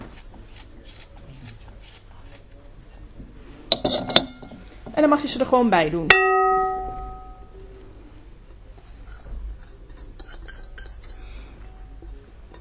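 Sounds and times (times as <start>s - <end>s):
utensil scraping and clinking against a bowl while folding batter: 0.0s - 4.6s, 8.5s - 12.5s
speech: 5.0s - 6.4s.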